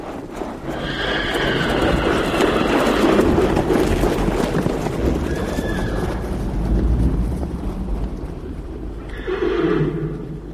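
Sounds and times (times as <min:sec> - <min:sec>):
herd of horses galloping, hooves pounding the ground: 0:00.0 - 0:10.5
horse whinnies: 0:00.7 - 0:03.3, 0:05.2 - 0:06.2, 0:09.0 - 0:10.5.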